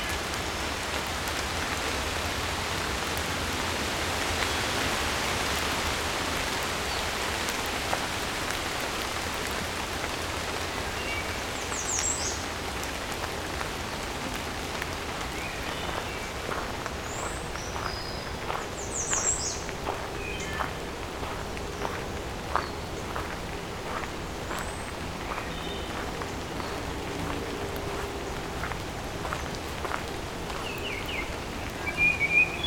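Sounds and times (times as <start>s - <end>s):
steady rain pattering: 0.0s - 32.6s.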